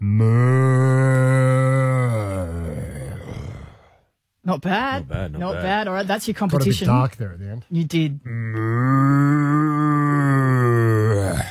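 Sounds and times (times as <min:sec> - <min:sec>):
speech: 0:00.0 - 0:00.5, 0:04.5 - 0:08.8
person imitating a cow mooing in a mooing contest: 0:00.0 - 0:03.9, 0:08.2 - 0:11.5.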